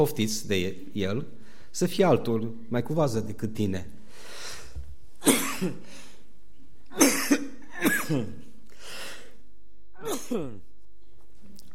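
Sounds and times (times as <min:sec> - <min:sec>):
speech: 0:00.0 - 0:04.3, 0:05.2 - 0:06.0, 0:07.0 - 0:08.4, 0:10.0 - 0:10.7
rough breaths between coughs: 0:04.0 - 0:04.9, 0:08.7 - 0:09.4
man coughing: 0:05.2 - 0:05.9, 0:06.9 - 0:08.6, 0:10.0 - 0:10.7.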